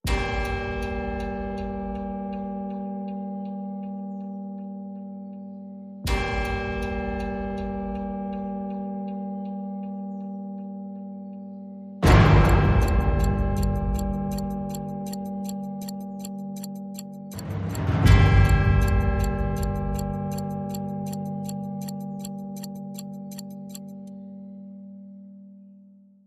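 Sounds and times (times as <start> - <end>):
clocklike tone in G: 0.1 - 24.2.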